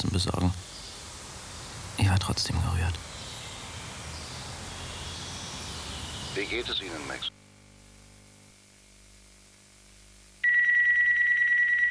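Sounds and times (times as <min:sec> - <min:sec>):
speech: 0:00.0 - 0:00.7, 0:02.0 - 0:03.1, 0:06.4 - 0:07.4
electronic telephone ringtone with a bright trilling tone: 0:10.4 - 0:11.9.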